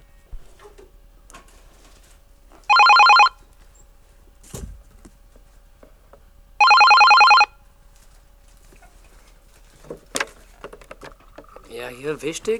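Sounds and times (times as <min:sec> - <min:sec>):
telephone ringing with an incoming call on a fan hotline: 0:02.7 - 0:03.5, 0:06.6 - 0:07.6
speech: 0:11.8 - 0:12.5.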